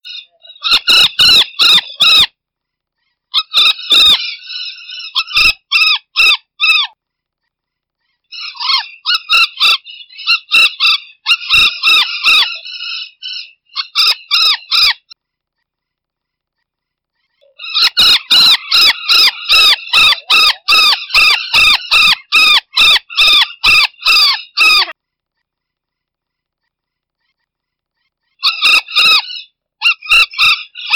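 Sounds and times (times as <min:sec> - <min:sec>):
golden parakeet singing: 0:00.0 - 0:02.3, 0:03.3 - 0:07.0, 0:08.3 - 0:15.2, 0:17.2 - 0:25.0, 0:28.2 - 0:30.9.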